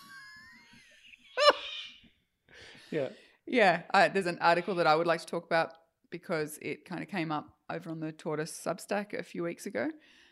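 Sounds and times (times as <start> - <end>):
thin high whistling birdsong: 0.6 - 2.2
speech: 2.9 - 10.2.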